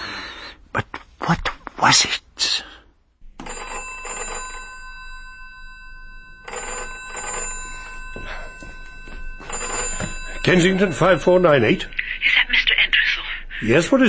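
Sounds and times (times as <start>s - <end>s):
speech: 1.3s - 2.7s, 10.5s - 12.0s, 13.6s - 14.0s
old-fashioned telephone bell ringing: 3.4s - 12.8s.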